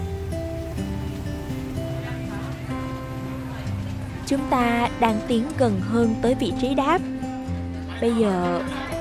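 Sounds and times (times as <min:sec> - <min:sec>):
vehicle engine running: 0:00.0 - 0:07.8
speech: 0:04.3 - 0:07.1, 0:08.0 - 0:08.9
laughter: 0:07.6 - 0:09.0.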